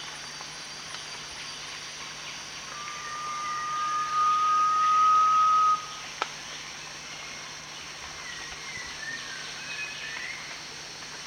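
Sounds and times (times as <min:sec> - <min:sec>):
steady high hiss: 0:00.0 - 0:11.2
Garnet pitta giving one long level whistle at Danum: 0:02.7 - 0:06.0.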